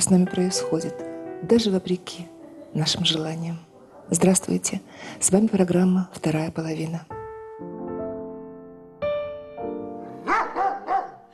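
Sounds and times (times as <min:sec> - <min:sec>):
speech: 0:00.0 - 0:07.2
female guard dog barking: 0:02.4 - 0:04.7, 0:10.2 - 0:11.3.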